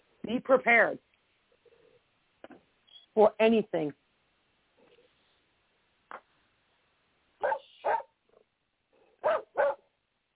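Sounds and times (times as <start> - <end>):
speech: 0.3 - 1.1, 3.2 - 4.0
dog barking: 7.4 - 8.2, 9.1 - 10.3.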